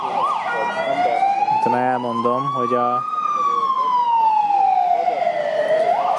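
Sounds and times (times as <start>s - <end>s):
ambulance siren driving past: 0.0s - 6.1s
low rumble of road traffic: 0.0s - 6.1s
speech: 1.7s - 3.1s.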